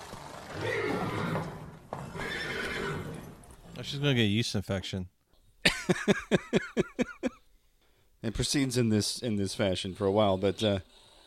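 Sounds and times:
stallion whinnying: 0.0 - 3.7
speech: 3.8 - 5.2, 5.9 - 7.4, 8.2 - 11.0
laughter: 5.7 - 7.4.

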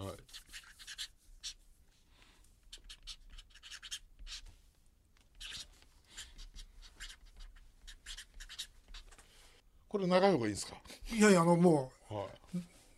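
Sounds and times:
pen scratching on a stiff shikishi board: 0.2 - 1.6, 2.6 - 4.5, 5.3 - 9.2
speech: 9.9 - 12.8.

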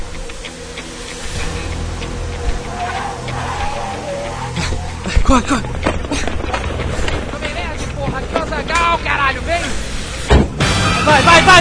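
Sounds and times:
car engine rumbling while pulling up: 1.2 - 10.3
speech: 5.3 - 5.8, 8.9 - 9.9, 11.0 - 11.5.

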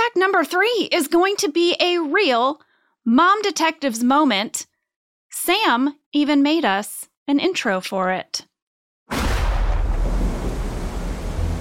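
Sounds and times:
speech: 0.2 - 4.7, 5.3 - 8.5
loud deep sustained rumble of thunder: 9.1 - 11.5
steady wash of rain-like hiss: 9.9 - 11.5.

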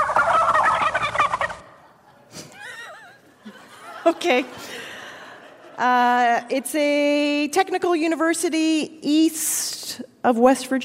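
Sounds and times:
turkey gobbling in a stadium: 0.0 - 1.9
laughter: 1.6 - 6.6
speech: 4.1 - 4.7, 5.8 - 10.8.

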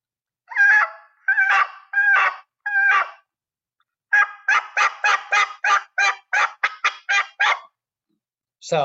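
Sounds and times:
front-end turkey yelps made on a mouth call: 0.5 - 3.3, 4.1 - 7.7.

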